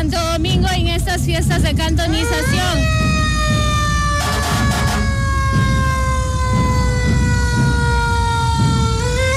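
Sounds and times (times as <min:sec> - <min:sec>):
speech: 0:00.2 - 0:03.1
fire brigade ladder truck siren wailing at a city festival: 0:02.1 - 0:09.3.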